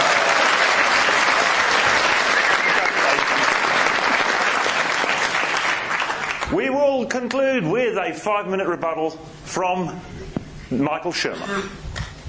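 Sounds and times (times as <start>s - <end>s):
large audience applauding a wedding anniversary celebration: 0.0s - 6.5s
speech: 7.2s - 11.8s.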